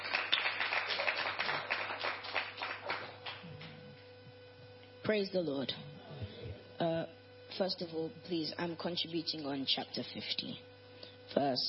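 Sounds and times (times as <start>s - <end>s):
audience clapping: 0.0s - 3.8s
speech: 5.1s - 5.9s, 6.8s - 10.7s, 11.4s - 11.6s.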